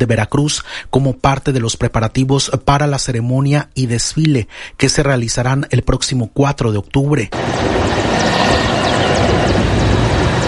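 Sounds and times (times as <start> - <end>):
speech: 0.0 - 8.8
helicopters flying overhead: 7.4 - 10.4.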